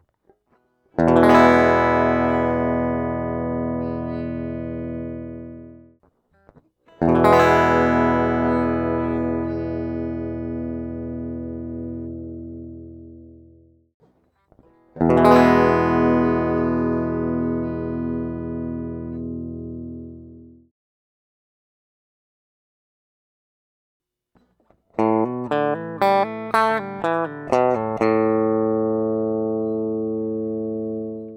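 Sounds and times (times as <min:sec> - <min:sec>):
guitar cable noise: 0:01.0 - 0:05.7, 0:06.3 - 0:12.4, 0:14.0 - 0:20.3, 0:24.4 - 0:31.3.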